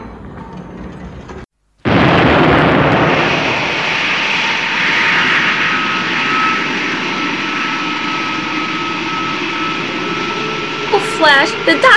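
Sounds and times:
rocket ship launching and breaking away from Earth: 1.8 - 10.9
faint high whine: 3.7 - 11.9
speech: 11.4 - 11.9.

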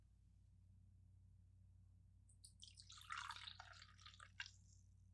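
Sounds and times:
coffee pouring into a cup: 2.5 - 4.7.

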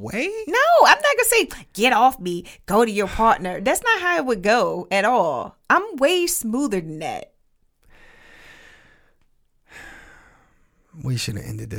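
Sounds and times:
speech: 0.0 - 7.3, 11.0 - 11.7
heavy breathing: 7.8 - 10.9.

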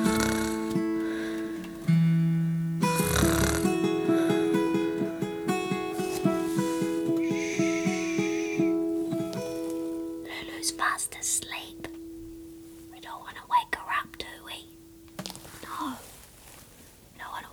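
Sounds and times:
voice imitating a loud drawn-out dinosaur snore: 0.0 - 0.8, 2.9 - 4.4
light music with steady plucked notes: 0.0 - 14.6.

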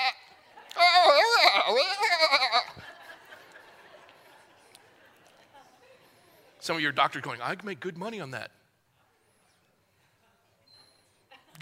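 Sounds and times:
person imitating a sheep bleating: 0.0 - 2.8
laughter: 0.0 - 6.5, 11.3 - 11.6
speech: 6.7 - 8.6.

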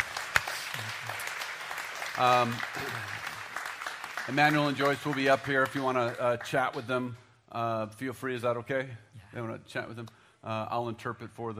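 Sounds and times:
people cheering: 0.0 - 5.6
audience applause: 0.0 - 6.8
speech: 2.2 - 3.2, 4.2 - 11.5.

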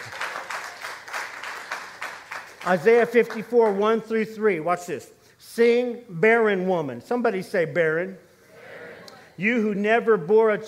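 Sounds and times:
crowd applauding: 0.0 - 4.0
speech: 2.6 - 8.3, 9.4 - 10.6.

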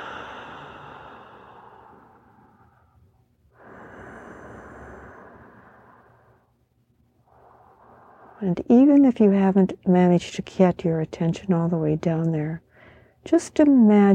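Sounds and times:
deep breathing during a guided meditation: 0.0 - 6.6, 7.2 - 8.6
speech: 8.4 - 12.6, 13.2 - 14.1.

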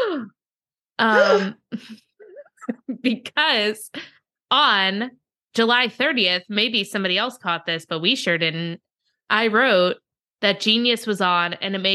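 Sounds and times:
speech: 1.0 - 11.9
person making short sliding moaning sounds: 1.1 - 1.6
person letting out an exaggerated theatrical gasp: 1.2 - 1.6.

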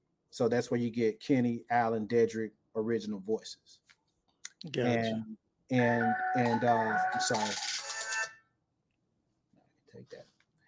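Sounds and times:
speech: 0.3 - 3.9, 4.6 - 7.8
mobile phone ringing with a bright melodic ringtone: 5.8 - 8.4.

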